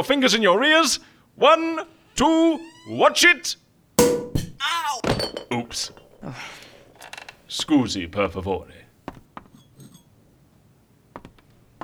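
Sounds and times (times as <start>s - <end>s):
speech: 0.0s - 3.6s, 4.6s - 6.6s, 7.5s - 9.2s
glasses clinking as champagne is served: 4.0s - 8.7s.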